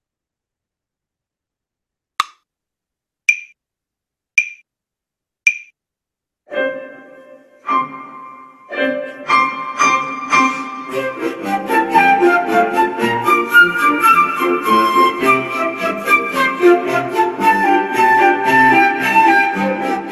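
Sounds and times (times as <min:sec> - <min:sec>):
flute at 110 bpm: 0:06.5 - 0:20.1
piano at 110 bpm: 0:06.5 - 0:20.1.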